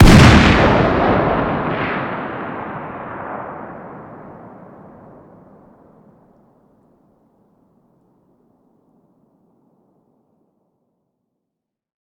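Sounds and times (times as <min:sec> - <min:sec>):
distant 50 BMG rifle firing outdoors: 0:00.0 - 0:05.2.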